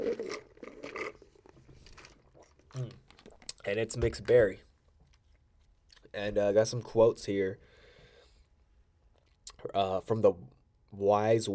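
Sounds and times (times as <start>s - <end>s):
person sipping from a bottled drink: 0.0s - 3.6s
wet slurping and swallowing: 0.0s - 3.6s
speech: 3.6s - 4.7s, 6.2s - 7.7s, 9.7s - 11.5s.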